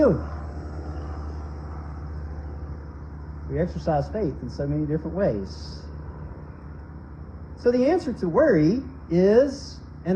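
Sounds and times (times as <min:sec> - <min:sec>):
speech: 0:00.0 - 0:00.3, 0:03.5 - 0:05.9, 0:07.6 - 0:10.1
airplane engine drone passing overhead: 0:00.0 - 0:10.1.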